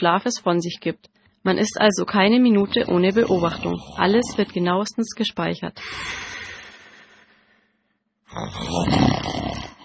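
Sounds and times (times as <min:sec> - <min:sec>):
speech: 0:00.0 - 0:06.5, 0:08.4 - 0:09.4
person snoring: 0:02.8 - 0:04.6, 0:05.8 - 0:07.5, 0:08.3 - 0:09.8.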